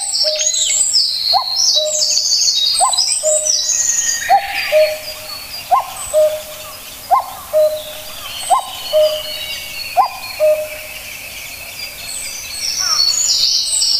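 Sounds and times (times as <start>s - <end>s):
common cuckoo calling a two-note falling cuck-oo: 0.0s - 11.2s
high chirping birds: 0.0s - 13.9s.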